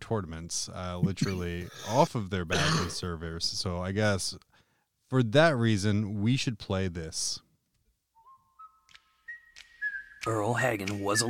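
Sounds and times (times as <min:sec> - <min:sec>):
speech: 0:00.1 - 0:04.5, 0:05.1 - 0:07.4, 0:10.2 - 0:11.2
whistled tune: 0:08.1 - 0:11.2.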